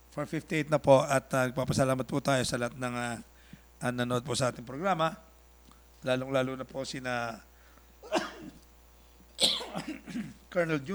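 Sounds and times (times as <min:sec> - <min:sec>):
speech: 0:00.2 - 0:05.3, 0:06.0 - 0:08.6, 0:09.8 - 0:10.9
person with an itchy throat coughing after being out in the heat: 0:08.0 - 0:08.6, 0:09.4 - 0:10.4.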